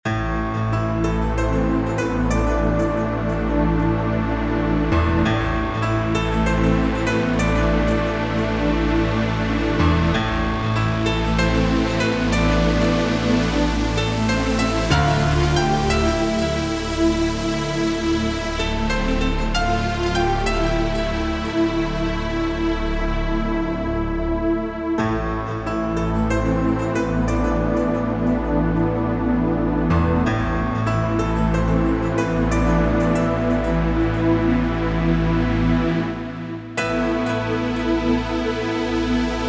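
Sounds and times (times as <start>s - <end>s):
pop piano: 0.0s - 39.4s.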